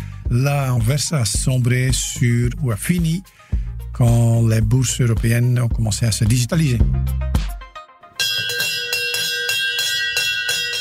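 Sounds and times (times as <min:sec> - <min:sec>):
speech: 0:00.3 - 0:03.4, 0:04.0 - 0:07.4
Brussels Stock Exchange bell ringing in Belgium: 0:08.1 - 0:10.8.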